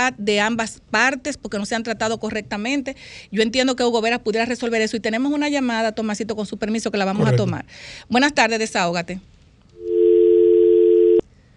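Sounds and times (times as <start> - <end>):
faint noise: 0.0 - 11.5
speech: 0.1 - 9.4
telephone dial tone after dropped phone call: 9.8 - 11.2.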